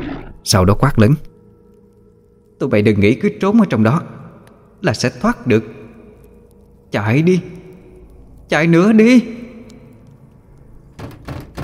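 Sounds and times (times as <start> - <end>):
speech: 0.4 - 1.3, 2.6 - 4.2, 4.8 - 5.8, 6.9 - 7.6, 8.5 - 9.4
door being struck hard and shaking: 10.9 - 11.6.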